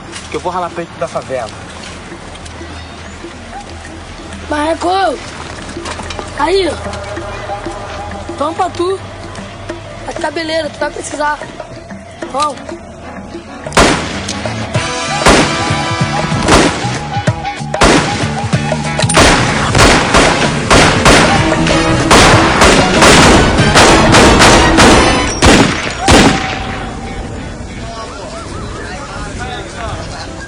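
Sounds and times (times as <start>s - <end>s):
indistinct voices: 0.0s - 19.0s, 21.2s - 30.4s
speech: 0.3s - 2.2s, 4.5s - 5.4s, 6.4s - 7.4s, 8.4s - 9.1s, 10.1s - 11.6s, 12.3s - 12.9s
cinematic music: 5.8s - 28.1s
repeated gunshots in a film scene: 13.7s - 14.4s, 15.2s - 17.1s, 17.8s - 18.4s, 19.0s - 26.8s.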